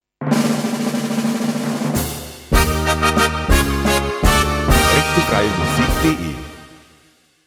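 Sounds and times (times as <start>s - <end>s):
carnival drum roll: 0.2s - 6.6s
carnival fanfare flourish: 2.5s - 7.0s.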